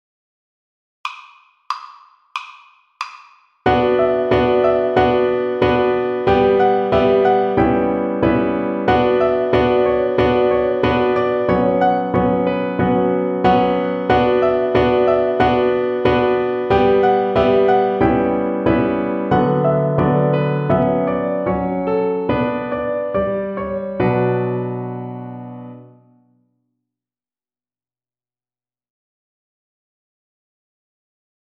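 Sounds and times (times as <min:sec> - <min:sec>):
piano accompaniment: 0:03.6 - 0:26.3.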